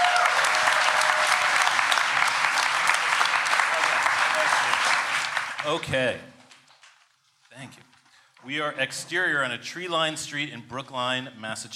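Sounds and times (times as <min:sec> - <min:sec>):
large crowd applauding: 0:00.0 - 0:06.0
speech: 0:05.6 - 0:06.4, 0:07.6 - 0:11.7.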